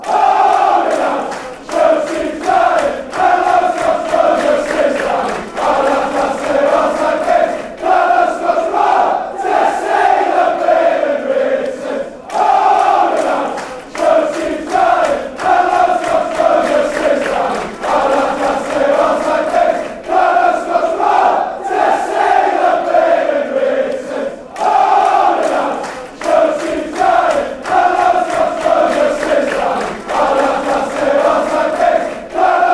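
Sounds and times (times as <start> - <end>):
football fans chanting a chorus: 0.0 - 32.7.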